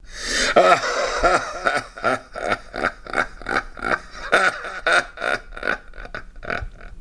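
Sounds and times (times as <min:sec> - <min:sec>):
evil laughter: 0:00.3 - 0:06.9.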